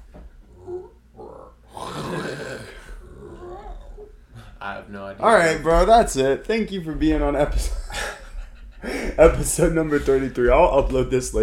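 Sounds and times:
man imitating a jaguar roar: 0.5 - 4.1
speech: 4.7 - 7.8, 9.2 - 11.4
laughter: 7.6 - 10.5.

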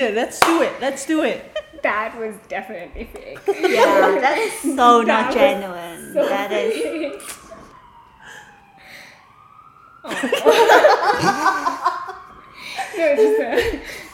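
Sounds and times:
speech: 0.0 - 7.4, 10.0 - 11.9, 12.9 - 14.0
people laughing: 3.4 - 4.8, 6.1 - 7.4, 10.1 - 14.1
people chattering: 3.5 - 7.6
ambulance siren wailing as it passes: 4.8 - 14.1.

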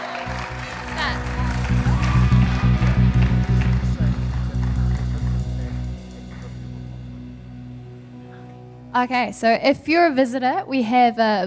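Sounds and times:
indoor audience applauding: 0.0 - 7.6
low hum: 0.3 - 9.7
speech: 9.0 - 11.4.

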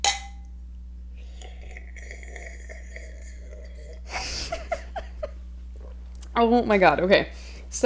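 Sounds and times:
glasses clinking in a toast: 0.0 - 0.5
speech: 6.4 - 7.8.

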